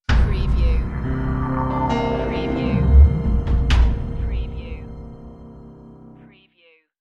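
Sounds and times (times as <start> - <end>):
dark drum hit in a sci-fi audio logo: 0.1 - 6.0
swell in a sci-fi audio logo: 0.8 - 6.2.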